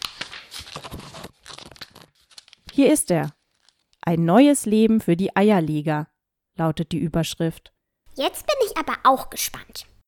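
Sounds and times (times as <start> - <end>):
newspaper pages being flipped while looking for an article: 0.0 - 4.0
speech: 2.8 - 3.4, 4.0 - 9.9.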